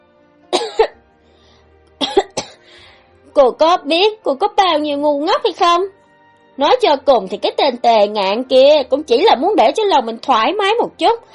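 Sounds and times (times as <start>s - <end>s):
light throaty cough: 0.6s - 1.0s, 2.0s - 2.6s
speech: 3.4s - 6.0s, 6.6s - 11.3s.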